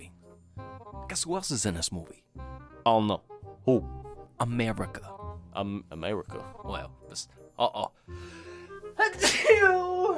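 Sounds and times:
speech: 1.1s - 8.4s
person sneezing in an exaggerated way: 9.0s - 9.7s.

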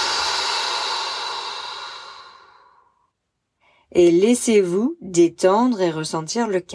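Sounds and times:
deep breath in through the nose and out through the mouth: 0.0s - 3.9s
speech: 3.9s - 6.7s.

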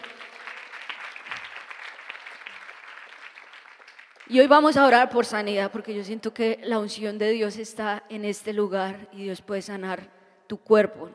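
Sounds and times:
congregation applauding: 0.0s - 4.4s
speech: 4.3s - 11.1s.

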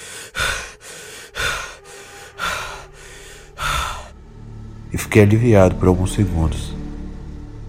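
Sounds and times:
person panting and gasping on waking from a nightmare: 0.0s - 4.2s
speech: 4.9s - 6.8s.

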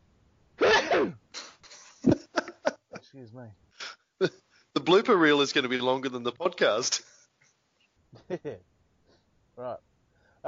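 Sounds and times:
loud sneeze: 0.6s - 1.6s
speech: 1.0s - 1.2s, 3.2s - 3.6s, 4.2s - 7.1s, 8.2s - 8.7s, 9.6s - 10.4s
laughter: 1.7s - 3.1s, 8.2s - 8.6s.

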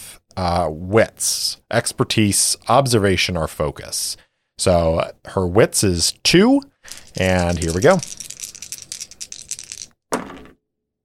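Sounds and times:
speech: 0.4s - 8.3s
action die and two challenge dice rattling: 6.9s - 10.0s.

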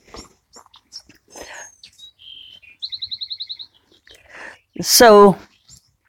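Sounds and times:
wren singing with chirps, whistles and trill: 0.2s - 6.0s
speech: 4.8s - 5.5s.

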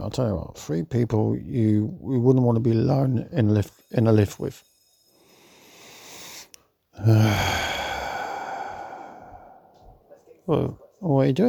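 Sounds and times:
speech: 0.1s - 4.7s, 7.0s - 7.8s, 10.5s - 11.4s
deep heavy breath with sighing exhale: 5.1s - 10.1s.

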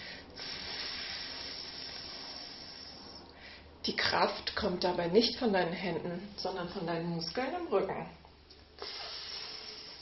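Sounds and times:
person hissing like a cobra while lying on the belly: 0.0s - 3.2s, 8.8s - 10.0s
speech: 3.9s - 8.2s.

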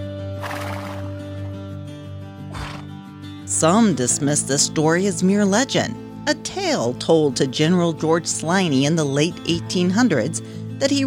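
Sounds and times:
horse neighing: 0.4s - 1.2s, 2.5s - 2.9s
speech: 3.6s - 11.0s.

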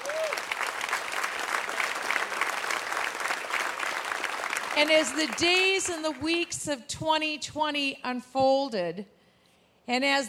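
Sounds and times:
large audience clapping: 0.0s - 6.5s
speech: 4.8s - 9.2s, 9.9s - 10.2s.

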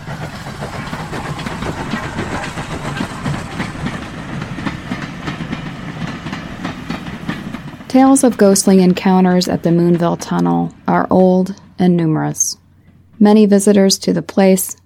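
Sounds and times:
steam hissing from locomotive: 0.0s - 8.5s
steam locomotive train rumbling along rails: 0.0s - 14.8s
speech: 7.9s - 12.6s, 13.2s - 14.8s.

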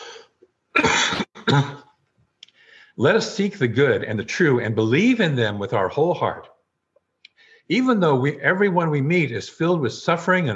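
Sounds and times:
person clearing throat: 0.0s - 1.9s
speech: 1.5s - 1.8s, 3.0s - 6.5s, 7.7s - 10.5s.

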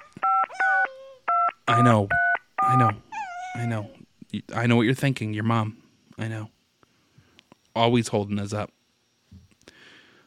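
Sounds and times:
telephone keypad tones as a phone is dialed: 0.2s - 3.0s
speech: 1.7s - 3.0s, 3.6s - 6.6s, 7.8s - 8.8s.

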